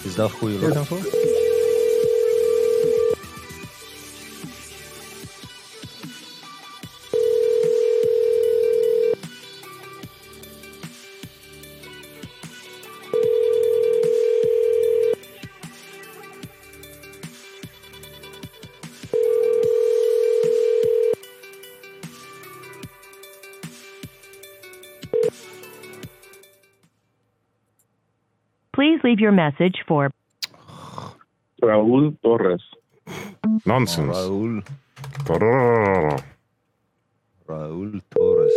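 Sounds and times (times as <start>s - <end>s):
speech: 0.0s - 1.3s, 29.1s - 30.2s, 31.6s - 32.7s, 33.6s - 36.3s, 37.5s - 38.5s
ringback tone on an outgoing telephone call: 0.8s - 3.2s, 7.1s - 9.2s, 13.1s - 15.2s, 19.1s - 21.2s, 25.1s - 25.4s, 38.2s - 38.5s.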